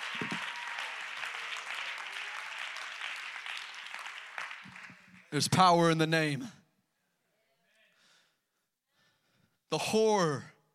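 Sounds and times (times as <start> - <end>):
audience clapping hands: 0.0 - 5.7
speech: 5.3 - 6.6, 9.8 - 10.5.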